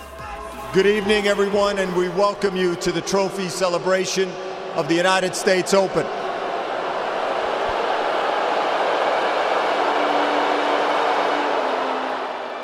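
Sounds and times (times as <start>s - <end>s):
large stadium crowd roaring at a tennis trophy celebration: 0.0s - 12.6s
speech: 0.7s - 6.2s
stadium crowd whistling in disapproval: 7.0s - 12.6s.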